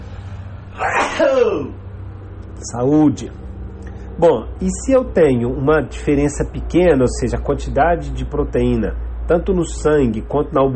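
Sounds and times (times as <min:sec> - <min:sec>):
low hum: 0:00.0 - 0:10.7
person sneezing: 0:00.7 - 0:01.7
speech: 0:01.4 - 0:01.8, 0:02.6 - 0:03.4, 0:04.2 - 0:10.7.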